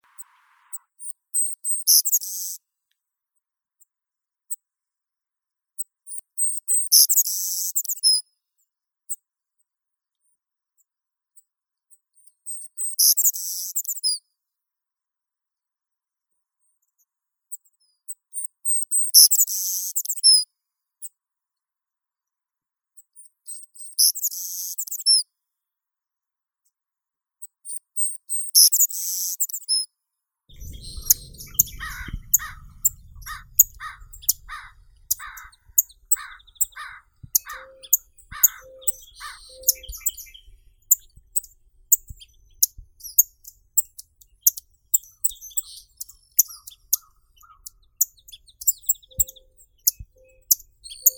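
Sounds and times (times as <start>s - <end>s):
savannah sparrow Passerculus sandwichensis: 30.5s - 51.1s.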